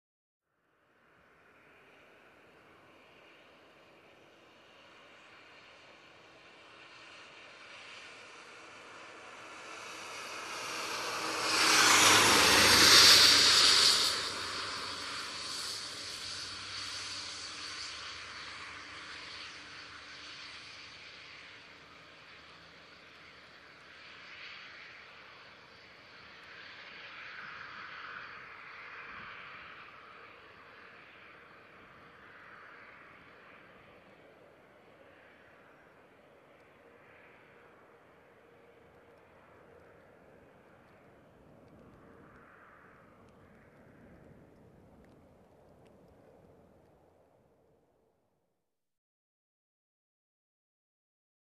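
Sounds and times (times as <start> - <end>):
car driving by on wet road: 1.2 - 47.3.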